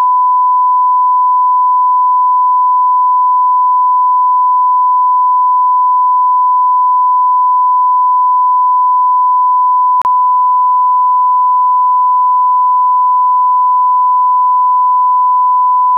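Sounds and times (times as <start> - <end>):
1000 Hz tone at maximum level: 0.0 - 15.9.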